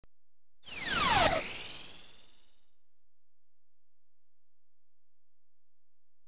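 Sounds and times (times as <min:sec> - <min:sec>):
electronically generated missile ricochets moving right to left: 0:00.7 - 0:02.2.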